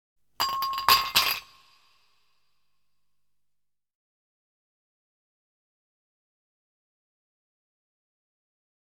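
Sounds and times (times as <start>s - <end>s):
ice cubes falling into a glass: 0.4s - 1.9s.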